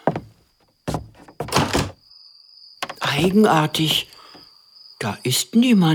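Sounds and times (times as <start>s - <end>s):
crickets chirping outside at night: 0.0s - 5.9s
door scraping open: 1.0s - 2.0s
door latch clunks: 1.4s - 2.0s
speech: 3.1s - 4.1s, 5.0s - 5.9s.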